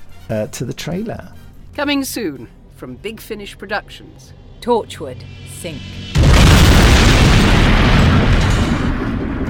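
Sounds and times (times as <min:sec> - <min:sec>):
speech: 0:00.3 - 0:07.2
spaceship crash boom: 0:05.1 - 0:09.4.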